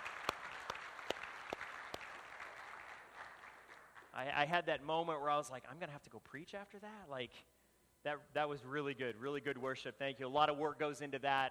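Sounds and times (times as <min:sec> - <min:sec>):
audience applauding: 0:00.0 - 0:04.2
speech: 0:04.2 - 0:11.4.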